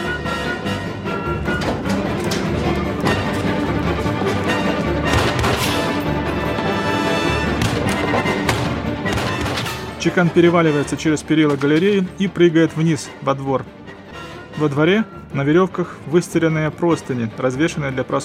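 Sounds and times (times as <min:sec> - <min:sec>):
dense loud film soundtrack: 0:00.0 - 0:18.2
gunfire during a film chase scene across a courtyard gallery: 0:04.5 - 0:06.0, 0:07.0 - 0:10.0
speech: 0:10.0 - 0:13.8, 0:14.6 - 0:18.2.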